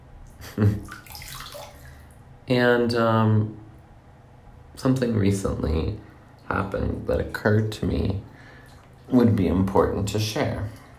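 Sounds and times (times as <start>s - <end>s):
hot medicinal water sloshing in a filled bathtub at home: 0.2s - 2.4s, 6.0s - 10.9s
speech: 0.6s - 1.0s, 2.5s - 3.6s, 4.8s - 8.3s, 9.1s - 10.8s.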